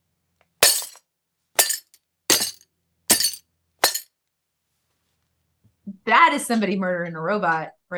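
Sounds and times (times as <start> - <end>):
hammer smashing glass mason jar inside tote bag in cardboard box: 0.6 - 1.0, 1.6 - 4.0
speech: 6.1 - 7.9.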